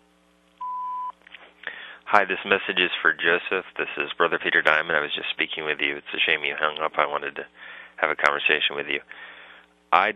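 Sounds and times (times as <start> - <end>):
voicemail answering machine beep: 0.6 - 1.1
speech: 2.1 - 10.1.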